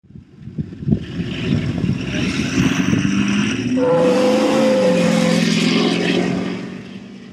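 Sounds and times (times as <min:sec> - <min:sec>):
Ford car taking off: 0:00.8 - 0:07.3.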